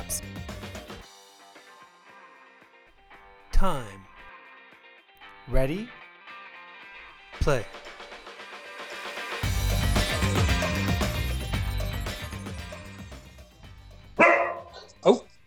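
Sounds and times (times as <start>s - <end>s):
busy music: 0.0s - 1.0s, 9.1s - 14.8s
speech: 3.6s - 4.1s, 5.5s - 6.0s, 7.4s - 7.9s, 15.0s - 15.2s
dog barking: 14.2s - 15.3s.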